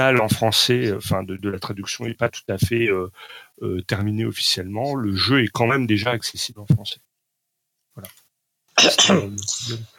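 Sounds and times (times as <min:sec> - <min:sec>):
people chatting about a video game: 0:00.0 - 0:07.1, 0:08.8 - 0:09.9
speech: 0:00.0 - 0:07.1, 0:08.0 - 0:08.2, 0:08.8 - 0:09.9
person clearing throat: 0:08.8 - 0:09.8.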